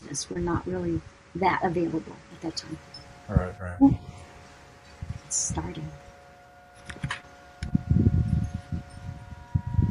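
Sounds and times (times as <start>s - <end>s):
wind gusts buffeting outdoors: 0.0s - 6.2s, 6.9s - 9.8s
steady hum: 0.0s - 9.8s
speech: 0.2s - 4.2s, 5.3s - 6.0s.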